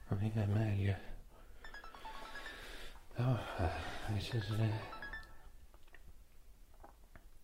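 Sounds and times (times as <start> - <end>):
speech: 0.1 - 1.1, 3.2 - 5.0
telephone ringing tone of an outgoing call: 1.5 - 5.6
person speaking on phone: 3.2 - 5.2.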